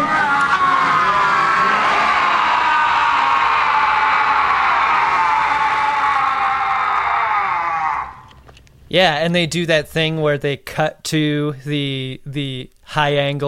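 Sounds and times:
group of voices growling and screaming wildly: 0.0 - 8.5
speech: 8.9 - 13.4.

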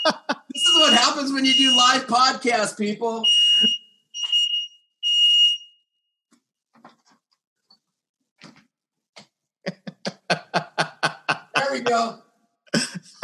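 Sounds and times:
laughter: 0.0 - 1.8, 9.7 - 12.1, 12.8 - 13.2
fire alarm beeping: 0.0 - 2.2, 3.2 - 5.8
speech: 1.2 - 3.8, 11.7 - 12.2.

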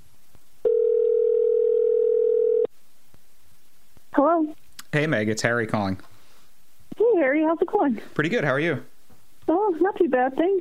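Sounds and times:
telephone line ringback tone: 0.6 - 2.7
speech: 4.2 - 6.1, 7.4 - 8.9, 9.7 - 10.5.

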